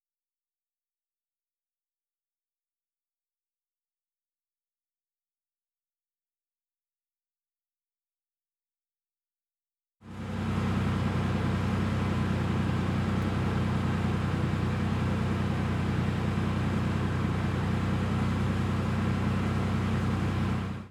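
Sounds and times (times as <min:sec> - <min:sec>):
truck engine idling with 100 Hz cutoff: 0:10.1 - 0:20.9.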